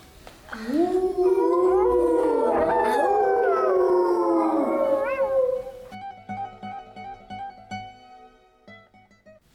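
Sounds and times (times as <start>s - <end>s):
speech: 0.6s - 1.3s
werewolf howling in a forest at night: 0.6s - 6.0s.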